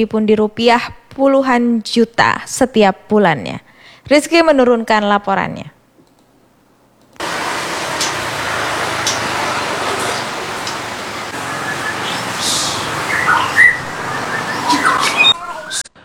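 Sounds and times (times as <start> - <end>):
speech: 0.0 - 5.8
loud rushing hiss: 7.2 - 15.8
white-rumped shama singing whistles and chirps: 9.0 - 15.8.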